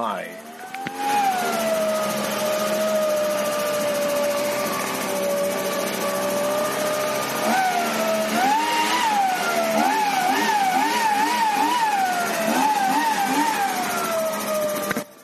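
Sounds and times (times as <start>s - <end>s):
speech: 0.0s - 1.2s
gas leaf blower engine revving while blowing leaves off a lawn: 0.0s - 15.2s.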